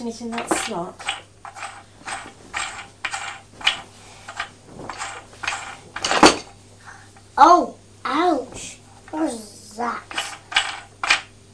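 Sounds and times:
speech: 0.0s - 1.1s, 7.4s - 7.8s
toy fire engine hose reel turning round with clicking ratcheting mechanism: 0.2s - 6.4s, 10.0s - 11.3s.

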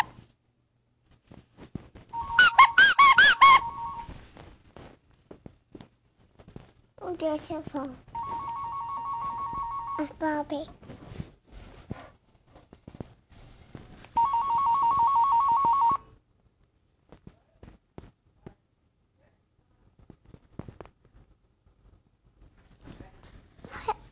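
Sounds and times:
rustling and clattering: 1.0s - 2.3s, 3.9s - 9.9s, 10.5s - 15.2s, 19.9s - 23.8s
telephone ringtone with rapid trilling electronic ring: 2.2s - 4.1s, 8.2s - 10.2s, 14.2s - 16.1s
speech: 7.2s - 8.1s, 10.0s - 10.8s.

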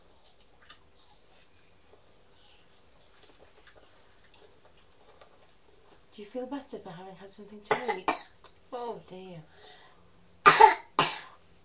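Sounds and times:
speech: 6.2s - 9.8s
harsh coughs: 7.7s - 8.3s, 10.5s - 11.4s.

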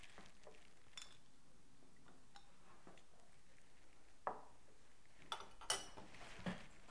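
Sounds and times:
dishes and cutlery clinking while washing: 0.9s - 1.3s, 5.3s - 6.6s.

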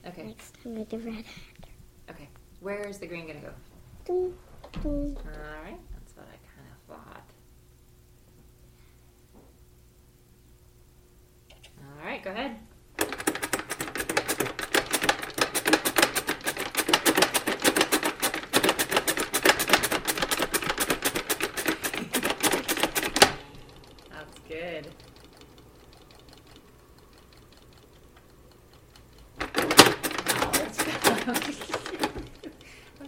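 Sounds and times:
speech: 0.2s - 5.9s, 12.2s - 12.6s
color spinner being spun during a game: 13.0s - 33.0s.

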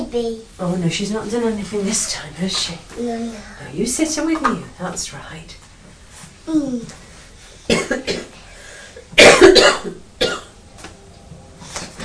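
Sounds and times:
child's voice: 0.0s - 0.5s, 3.0s - 3.5s, 6.4s - 7.0s
speech: 0.1s - 5.6s, 6.5s - 7.0s
woman coughing: 7.7s - 8.4s, 9.2s - 10.5s.

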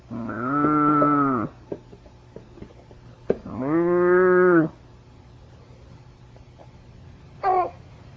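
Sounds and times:
faint steady hum: 0.0s - 8.1s
cow mooing: 0.1s - 1.5s, 3.5s - 4.7s.

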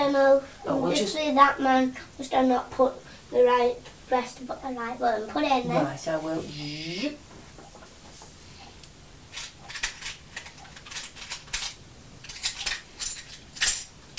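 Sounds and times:
speech: 0.1s - 7.3s
coins dropping out of a machine: 9.3s - 14.1s.

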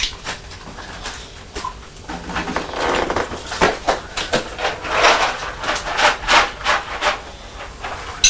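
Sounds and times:
cat food scraped out of a bowl: 2.1s - 8.2s.

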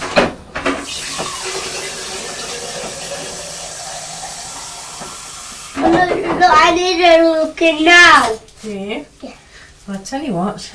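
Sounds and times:
water pouring into a vase: 0.9s - 5.8s
speech: 6.4s - 9.1s, 9.9s - 10.7s.

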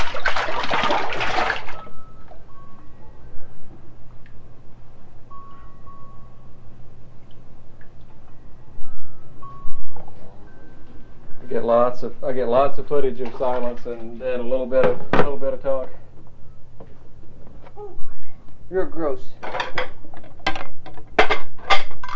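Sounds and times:
water splashing in a bathtub: 0.0s - 1.9s
water trickling and dripping in a bathtub: 7.2s - 8.2s
speech: 11.6s - 16.0s, 18.7s - 20.0s.

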